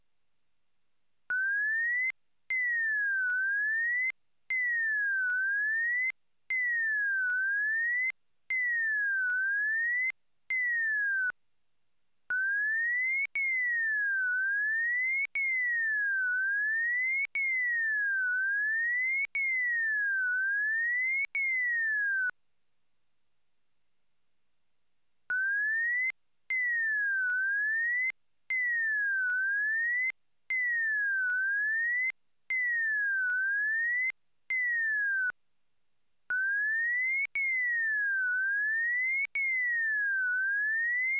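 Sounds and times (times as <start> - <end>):
pure tone gliding up and down in a zigzag: 1.3 - 11.3, 12.3 - 22.4, 25.3 - 35.4, 36.3 - 41.1.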